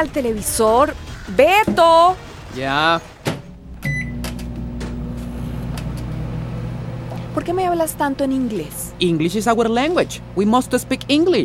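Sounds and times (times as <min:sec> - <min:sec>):
speech: 0:00.0 - 0:03.1, 0:07.4 - 0:11.4
microwave oven heating pizza: 0:03.5 - 0:11.4
microwave oven beep: 0:03.8 - 0:04.4.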